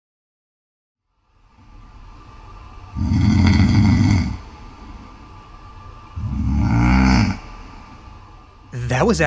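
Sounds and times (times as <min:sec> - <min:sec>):
man snoring: 0:03.0 - 0:04.4, 0:06.2 - 0:07.4
speech: 0:08.9 - 0:09.2.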